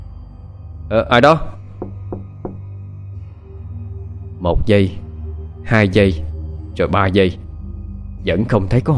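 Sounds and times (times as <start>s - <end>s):
speech: 0.9s - 1.6s, 4.4s - 5.0s, 5.6s - 7.4s, 8.2s - 8.9s
knocking on a toilet door: 1.8s - 2.7s.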